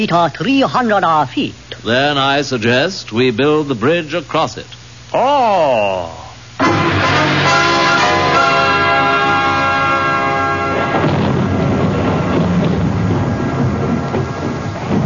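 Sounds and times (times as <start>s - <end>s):
speech: 0.0s - 7.2s
sustained tonal chord: 6.6s - 12.3s
monsoon thunderstorm roar: 6.8s - 15.0s.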